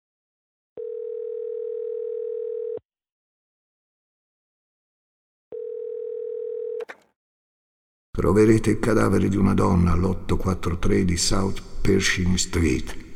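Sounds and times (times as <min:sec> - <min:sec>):
payphone dial tone: 0:00.8 - 0:02.8, 0:05.5 - 0:07.0
sharp click: 0:06.8 - 0:07.0
speech: 0:08.2 - 0:13.1.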